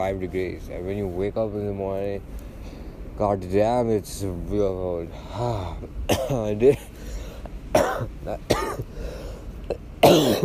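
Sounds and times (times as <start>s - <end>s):
speech: 0.0s - 2.5s, 3.2s - 7.0s, 7.7s - 10.4s
short harsh coughs: 6.1s - 6.5s, 7.8s - 8.9s, 9.7s - 10.4s.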